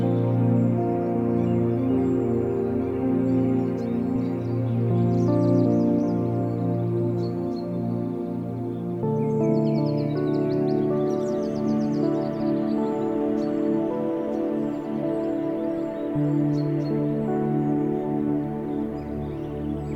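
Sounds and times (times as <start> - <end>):
birds chirping and trilling in a garden: 0.0 - 19.9
calm meditation music with slow low chords: 0.0 - 19.9.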